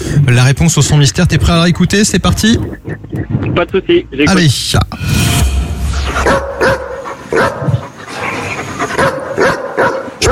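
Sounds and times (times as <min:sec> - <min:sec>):
speech: 0:00.3 - 0:05.4, 0:06.2 - 0:07.8
dog barking: 0:06.2 - 0:07.8, 0:08.8 - 0:10.2.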